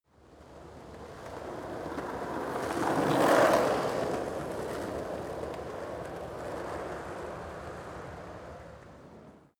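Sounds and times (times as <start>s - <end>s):
skateboard driving by: 0.9s - 8.4s.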